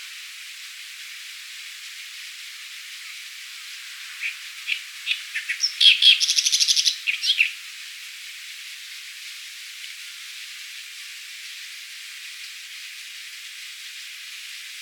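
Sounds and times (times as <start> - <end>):
Acrocephalus orientalis singing: 4.2 - 7.5.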